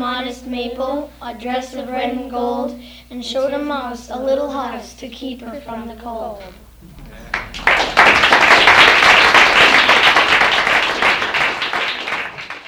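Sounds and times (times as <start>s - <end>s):
speech: 0.0s - 6.6s
audience clapping after a poem: 6.8s - 12.6s.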